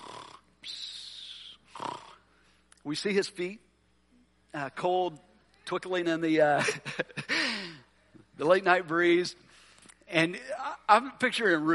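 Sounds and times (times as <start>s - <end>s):
person snoring: 0.0s - 0.4s, 1.3s - 2.2s
speech: 2.8s - 3.7s, 4.5s - 7.3s, 8.4s - 9.4s, 10.1s - 11.7s.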